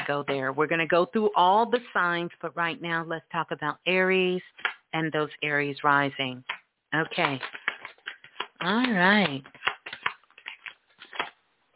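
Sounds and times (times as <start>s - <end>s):
speech: 0.1s - 7.6s, 8.6s - 9.7s
tarot cards being shuffled by hand: 6.4s - 11.7s.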